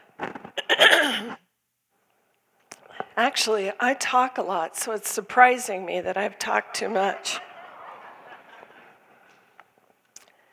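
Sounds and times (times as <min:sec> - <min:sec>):
person clearing throat with gravelly rasps and rumbling hack: 0:00.6 - 0:01.4
speech: 0:03.2 - 0:07.5
laughter: 0:06.4 - 0:09.5.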